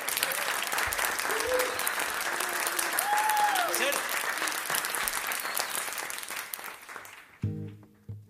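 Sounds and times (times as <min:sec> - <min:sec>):
cheers and whistles: 0:00.0 - 0:06.3
crowd clapping: 0:00.0 - 0:08.1
man talking: 0:03.7 - 0:04.1.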